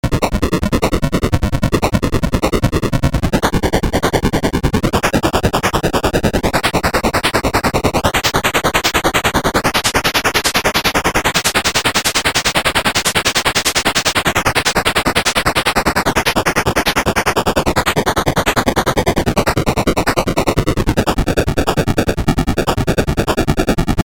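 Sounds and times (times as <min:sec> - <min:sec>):
pitched noise: 0:00.0 - 0:24.0.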